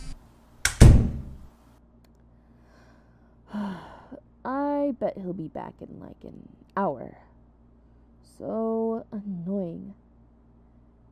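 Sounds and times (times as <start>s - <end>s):
door swinging shut with a double thud: 0.7s - 1.5s
speech: 5.0s - 7.3s, 8.4s - 10.0s.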